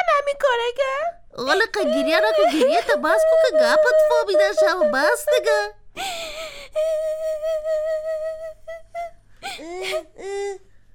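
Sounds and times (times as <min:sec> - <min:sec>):
speech: 0:00.3 - 0:07.1, 0:09.6 - 0:10.7
child crying and whimpering: 0:01.7 - 0:05.7, 0:06.7 - 0:10.6.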